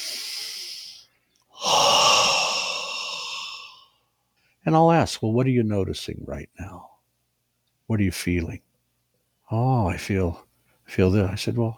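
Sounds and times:
deep belly breath: 0:00.0 - 0:04.0
speech: 0:04.7 - 0:06.9, 0:07.9 - 0:08.7, 0:09.5 - 0:11.7.

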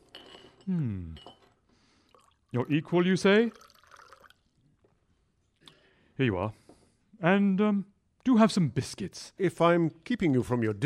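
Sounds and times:
glass clinking: 0:00.0 - 0:02.4
speech: 0:00.7 - 0:01.3, 0:02.5 - 0:03.6, 0:06.2 - 0:06.6, 0:07.2 - 0:10.8.

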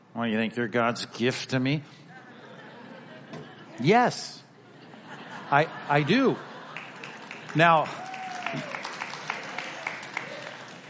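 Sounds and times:
speech: 0:00.2 - 0:02.0, 0:03.3 - 0:04.4, 0:05.5 - 0:06.5, 0:07.6 - 0:08.7
laughter: 0:02.1 - 0:08.7
sparse applause from a church congregation during a sermon: 0:06.6 - 0:10.8.

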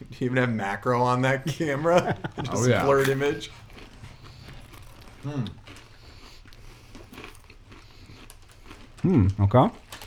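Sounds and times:
speech: 0:00.2 - 0:03.6, 0:05.2 - 0:05.6, 0:09.0 - 0:09.8
laughter: 0:01.1 - 0:04.1
crunchy chewing of a coated snack at the microphone: 0:01.5 - 0:10.0.

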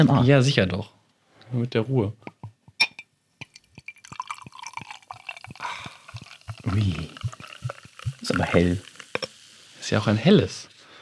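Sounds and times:
speech: 0:00.0 - 0:02.3, 0:06.6 - 0:07.2, 0:08.3 - 0:08.9, 0:09.9 - 0:10.7
drips and clinks: 0:02.8 - 0:09.4
Helles beer poured from a bottle into a glass: 0:03.4 - 0:10.8
beer foam fizzing: 0:03.5 - 0:11.0.

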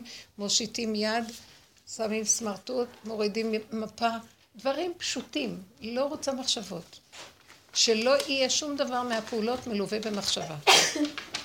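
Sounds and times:
speech: 0:00.1 - 0:11.3
person sneezing: 0:10.6 - 0:11.1.

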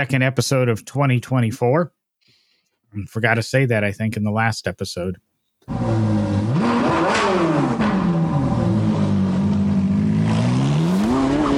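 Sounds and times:
speech: 0:00.0 - 0:02.0, 0:02.9 - 0:06.2
car engine revving as the throttle is worked: 0:05.7 - 0:11.5.

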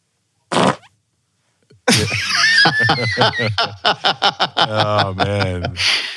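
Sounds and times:
recorded fart sound effects: 0:00.5 - 0:01.0
laughter: 0:01.9 - 0:06.1
speech: 0:02.0 - 0:06.1.

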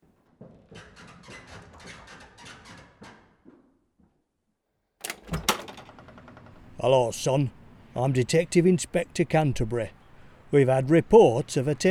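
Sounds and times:
door handle and latch rattling and scraping: 0:05.0 - 0:06.8
speech: 0:06.8 - 0:11.9.

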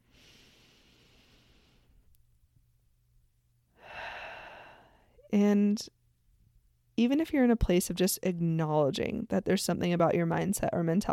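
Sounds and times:
deep breath: 0:00.0 - 0:02.0, 0:03.8 - 0:05.3
speech: 0:05.4 - 0:06.0, 0:07.0 - 0:11.1.

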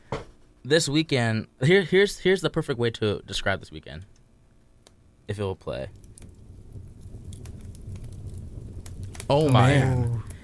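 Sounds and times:
speech: 0:00.6 - 0:04.2, 0:05.3 - 0:06.0, 0:09.3 - 0:10.3
fire crackling: 0:01.6 - 0:10.4
sharp pops and snaps of fire: 0:04.0 - 0:05.1, 0:05.7 - 0:10.4
low roaring rumble of fire: 0:05.9 - 0:10.4.

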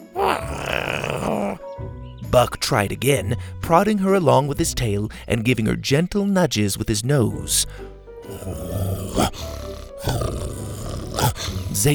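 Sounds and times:
human voice imitating a small dinosaur growling: 0:00.0 - 0:01.7, 0:08.2 - 0:11.9
speech: 0:02.3 - 0:10.6, 0:11.2 - 0:11.9.

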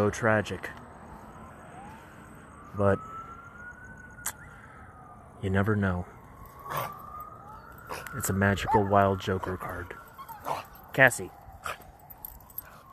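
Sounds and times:
speech: 0:00.0 - 0:00.8, 0:02.8 - 0:03.1, 0:05.4 - 0:06.8, 0:08.1 - 0:11.8
small female dog whimpering: 0:10.2 - 0:10.7.

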